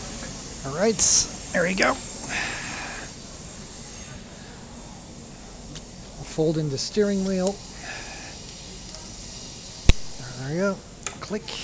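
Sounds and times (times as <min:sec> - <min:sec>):
train pulling into a station: 0:00.0 - 0:09.8
speech: 0:00.6 - 0:02.5, 0:06.4 - 0:08.0, 0:10.5 - 0:11.6.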